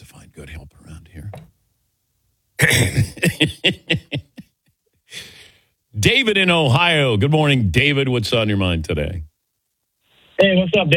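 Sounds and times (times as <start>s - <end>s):
man clearing his throat: 2.6s - 3.5s
laughter: 2.6s - 4.6s
speech: 6.2s - 9.3s, 10.4s - 10.9s.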